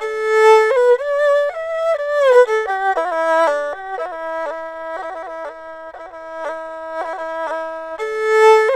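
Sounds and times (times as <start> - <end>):
erhu playing in G at 120: 0.0 - 8.7.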